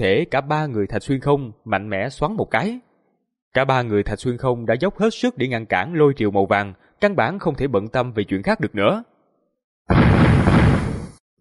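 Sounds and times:
speech: 0:00.0 - 0:02.8, 0:03.5 - 0:09.1
dull muffled explosion: 0:09.9 - 0:11.2.

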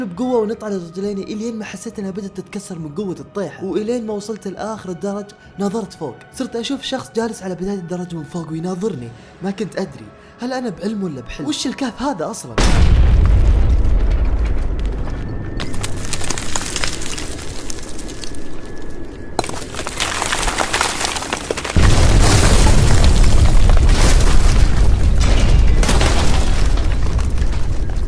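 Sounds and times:
speech: 0:00.0 - 0:13.1
explosion booming from above inside a cave: 0:12.6 - 0:15.6, 0:21.8 - 0:28.0
walls collapsing with crashing debris: 0:12.6 - 0:18.6, 0:19.4 - 0:28.0.

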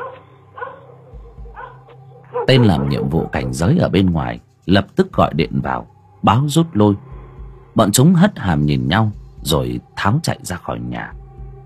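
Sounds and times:
dogs barking in a neighbourhood: 0:00.0 - 0:03.7
speech: 0:02.4 - 0:07.1, 0:07.8 - 0:11.2.

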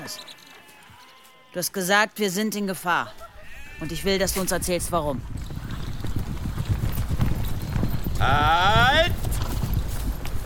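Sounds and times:
speech: 0:00.0 - 0:00.3, 0:01.5 - 0:05.4, 0:08.2 - 0:09.2
horses' hooves clip-clopping as riders halt at a clearing: 0:00.0 - 0:01.6, 0:03.1 - 0:10.4.

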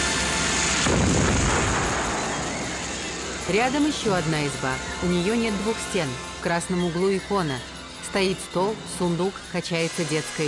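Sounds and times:
heavy blast in a film battle scene: 0:00.1 - 0:04.3
infantryman firing a gun at fleeing French soldiers in a film battle scene: 0:00.8 - 0:03.2
speech: 0:03.5 - 0:10.4.

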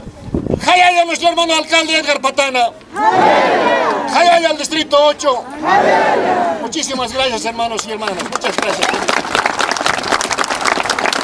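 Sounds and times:
speech: 0:00.8 - 0:09.4
crowd applauding at an outdoor inauguration of newly paved ground: 0:08.0 - 0:11.2.

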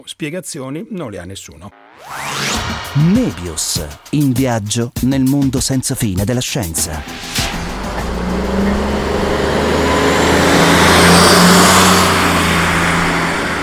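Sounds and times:
speech: 0:00.0 - 0:07.6
city road traffic of car engines and tyres: 0:06.9 - 0:13.6.

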